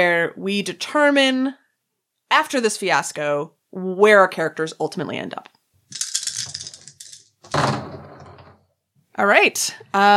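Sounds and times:
speech: 0:00.0 - 0:01.6, 0:02.3 - 0:05.5, 0:09.2 - 0:10.1
dice rattling in a hand or cup: 0:05.9 - 0:07.3
dice clattering onto a hard table surface: 0:05.9 - 0:07.6.

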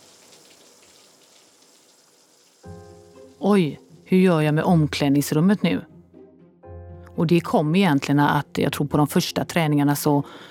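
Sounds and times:
running showers hissing: 0:00.0 - 0:04.2
speech: 0:03.4 - 0:05.9, 0:07.2 - 0:10.5.

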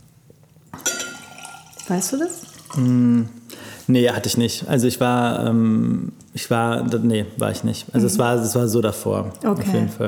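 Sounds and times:
water pouring into a glass: 0:00.8 - 0:03.4
speech: 0:01.9 - 0:10.0.

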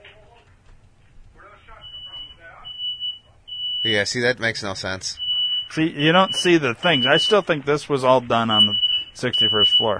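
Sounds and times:
fire alarm steady high-pitched electronic tone: 0:01.7 - 0:04.1, 0:05.2 - 0:07.5, 0:08.5 - 0:09.9
speech: 0:03.8 - 0:09.9.

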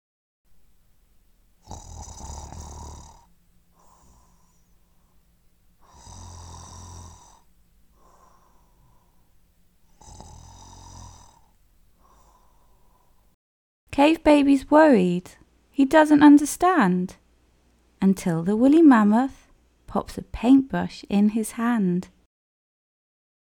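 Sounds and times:
bear snoring while asleep in a cave: 0:01.6 - 0:05.2, 0:05.8 - 0:13.2
speech: 0:14.0 - 0:17.2, 0:18.0 - 0:22.2.

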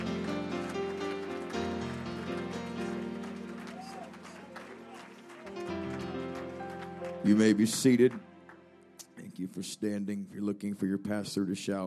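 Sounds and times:
large crowd clapping hands: 0:00.0 - 0:08.8
sustained organ-like chords: 0:00.0 - 0:11.4
speech: 0:07.2 - 0:08.3, 0:09.4 - 0:11.8.

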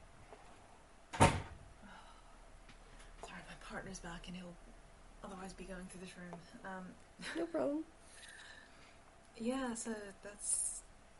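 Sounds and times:
door closing thud: 0:01.1 - 0:01.6
speech: 0:03.8 - 0:08.3, 0:09.4 - 0:10.7.

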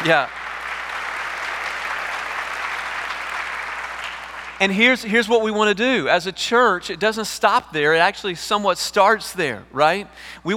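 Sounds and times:
speech: 0:00.0 - 0:00.4, 0:04.6 - 0:10.5
church audience applauding: 0:00.0 - 0:04.8.

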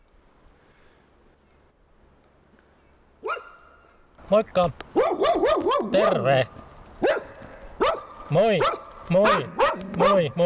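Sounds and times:
dog giving a short rising yelp: 0:03.2 - 0:03.8, 0:04.9 - 0:06.4, 0:07.0 - 0:10.4
speech: 0:04.3 - 0:04.9, 0:05.8 - 0:07.2, 0:08.3 - 0:10.4.

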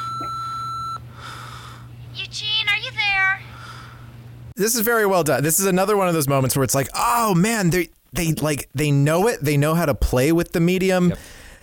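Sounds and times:
answering machine beep tone: 0:00.0 - 0:01.0
speech: 0:04.6 - 0:11.4.

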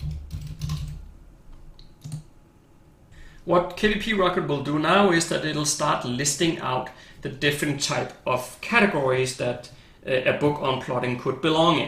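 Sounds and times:
typing a search term on a computer keyboard: 0:00.0 - 0:01.1, 0:01.8 - 0:02.3
speech: 0:03.4 - 0:11.8.

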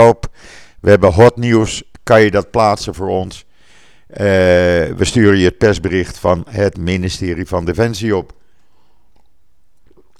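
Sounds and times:
speech: 0:00.0 - 0:03.5, 0:04.1 - 0:08.4
faint swallowing: 0:08.3 - 0:10.1
person sipping water: 0:08.4 - 0:10.1
wet mouth clicks: 0:09.1 - 0:10.1.

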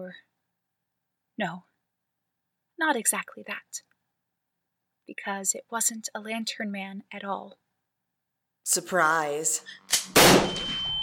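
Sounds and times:
speech: 0:00.1 - 0:00.3, 0:01.4 - 0:01.7, 0:02.8 - 0:03.9, 0:05.1 - 0:07.6, 0:08.7 - 0:10.6
shotgun blast: 0:09.9 - 0:10.8
steady high-pitched ringing tone: 0:10.4 - 0:11.0.

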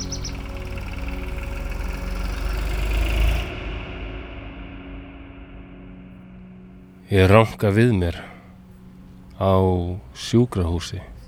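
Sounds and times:
faint chirps: 0:00.0 - 0:03.5, 0:08.0 - 0:11.2
tractor engine approaching across a large meadow: 0:00.0 - 0:03.8, 0:06.7 - 0:11.2
speech: 0:07.1 - 0:08.3, 0:09.4 - 0:11.2.

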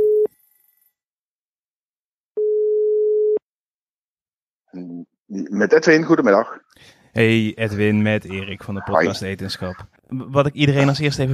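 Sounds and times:
phone line ringback tone: 0:00.0 - 0:00.4, 0:02.4 - 0:03.4
speech: 0:04.7 - 0:11.3.

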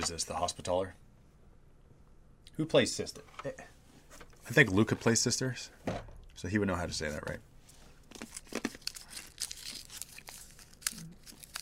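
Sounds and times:
speech: 0:00.0 - 0:01.1, 0:02.6 - 0:03.8, 0:04.4 - 0:07.5
small plastic Halls cough drop wrapper being twisted open: 0:08.0 - 0:11.6.

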